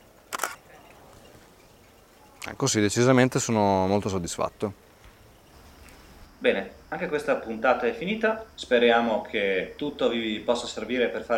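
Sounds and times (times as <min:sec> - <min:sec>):
camera shutter click with flash: 0:00.3 - 0:00.6
speech: 0:02.5 - 0:04.9, 0:07.0 - 0:11.3.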